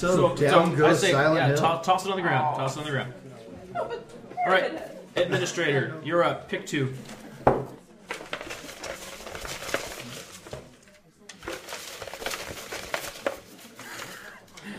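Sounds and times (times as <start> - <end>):
speech: 0.0 - 7.2
paper rustling and crinkling: 8.0 - 14.6.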